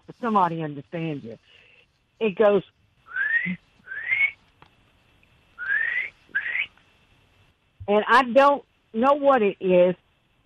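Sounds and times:
speech: 0.2 - 1.6, 2.2 - 2.8, 3.4 - 3.6, 7.9 - 10.0
person whistling a bird-like call: 3.1 - 4.4, 5.6 - 6.7.

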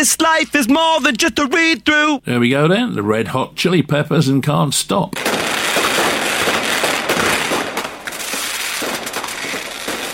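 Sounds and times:
speech: 0.0 - 5.4
fireworks crackling and bursting: 5.2 - 10.1.

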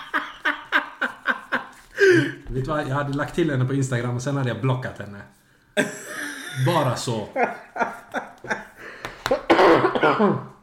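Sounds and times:
laughter: 0.0 - 2.4, 5.8 - 9.4
speech: 2.2 - 8.6, 9.7 - 10.5
person coughing: 9.3 - 10.6.

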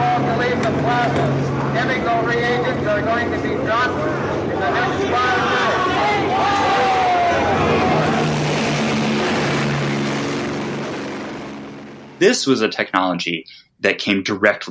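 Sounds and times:
noisy crowd of protesters in a plaza: 0.0 - 9.2
helicopter flying over a crowd dropping CS gas: 0.0 - 12.8
speech: 0.7 - 6.5, 12.2 - 14.6.

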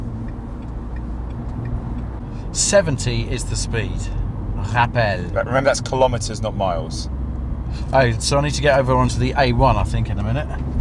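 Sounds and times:
faint regular ticking: 0.0 - 2.4
car on a motorway road and engine drone: 0.0 - 10.7
speech: 2.5 - 10.7.

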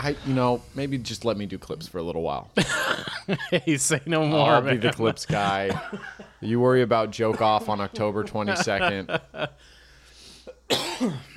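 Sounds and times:
speech: 0.0 - 9.8, 10.7 - 11.3
person getting over a cough coughing: 2.6 - 3.3, 5.5 - 6.3, 10.5 - 11.3
laughter: 4.4 - 9.6.

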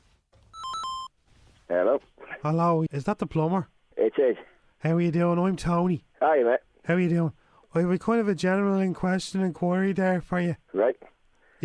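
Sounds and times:
short electronic phone ringtone: 0.5 - 1.2
speech: 1.7 - 11.6.

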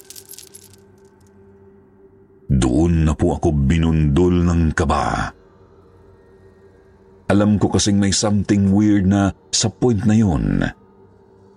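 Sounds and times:
chain rattling with metallic clinks: 0.0 - 1.3
speech: 2.6 - 5.4, 7.3 - 10.8.

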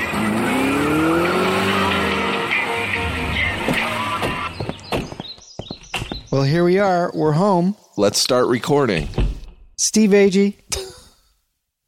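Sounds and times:
car engine revving: 0.0 - 4.9
car tires squealing and skidding: 0.0 - 4.9
speech: 6.3 - 9.2, 9.8 - 10.7.

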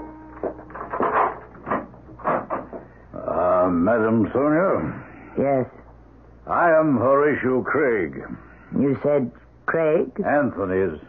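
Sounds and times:
door chime: 0.0 - 1.3
speech: 3.9 - 5.8, 6.5 - 11.0.

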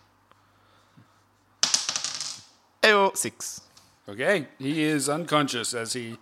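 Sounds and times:
dice clattering across a table: 1.6 - 2.6
speech: 3.2 - 6.1.

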